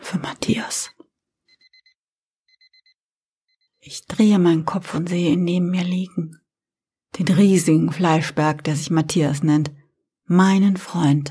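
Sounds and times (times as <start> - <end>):
speech: 0.1 - 1.0, 3.9 - 6.4, 7.2 - 11.2
alarm clock beeping in short electronic tones: 0.7 - 3.8.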